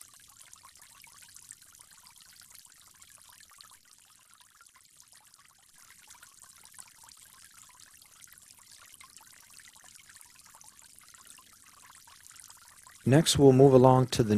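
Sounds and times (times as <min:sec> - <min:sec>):
water pouring in a steady stream during ablution: 0:00.0 - 0:14.3
speech: 0:13.0 - 0:14.3.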